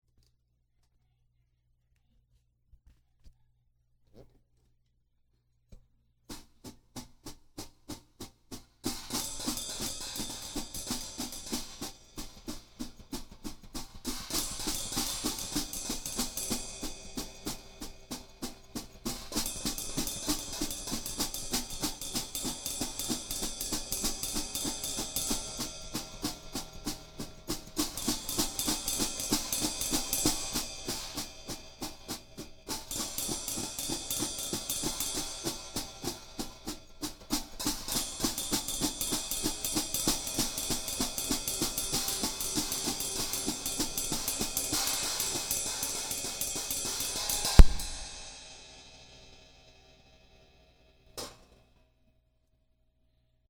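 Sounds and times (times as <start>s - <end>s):
drum interlude: 6.3s - 48.6s.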